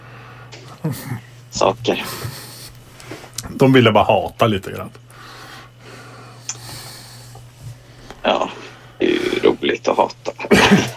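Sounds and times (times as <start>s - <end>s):
steady low hum: 0.0s - 10.9s
speech: 0.8s - 2.4s, 3.5s - 5.0s, 9.8s - 10.9s
single short cough: 10.3s - 10.9s.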